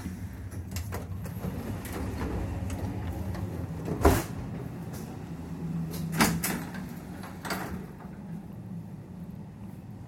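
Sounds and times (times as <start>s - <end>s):
steady low engine rumble inside a train carriage: 0.0s - 10.0s
broken train sliding door mechanism clunking: 0.4s - 8.2s.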